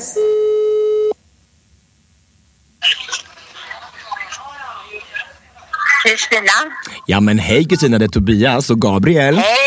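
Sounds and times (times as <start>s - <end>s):
electronic telephone ringing tone while calling: 0.2s - 1.2s
speech: 6.1s - 9.6s.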